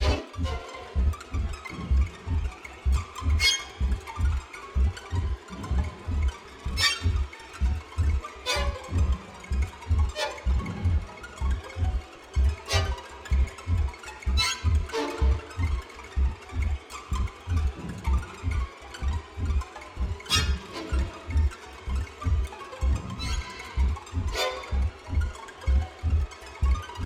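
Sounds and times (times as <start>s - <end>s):
creeping horror music: 0.0s - 27.0s.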